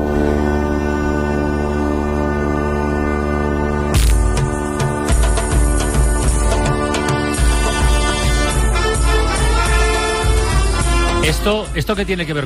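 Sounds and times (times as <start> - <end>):
brass and wind fanfare band playing festival march music: 0.2 - 11.7
pounding low drum beat: 4.0 - 12.4
speech: 11.4 - 12.4.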